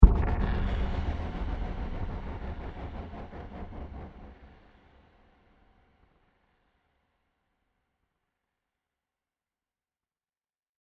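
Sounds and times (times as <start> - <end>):
digital mysterious impact with delays and scratches: 0.0 - 4.7.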